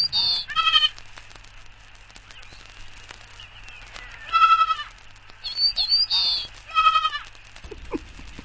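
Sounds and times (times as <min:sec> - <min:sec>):
high scratchy bird calls: 0:00.0 - 0:01.1, 0:02.0 - 0:08.4
young goat bleating: 0:00.3 - 0:00.9, 0:04.2 - 0:05.0, 0:06.3 - 0:07.3.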